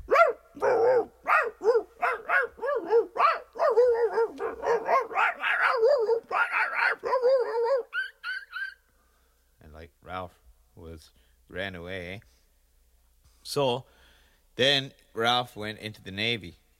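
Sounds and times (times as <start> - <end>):
dogs fighting, barking and growling: 0.1 - 8.7
speech: 13.5 - 13.9, 14.6 - 16.6.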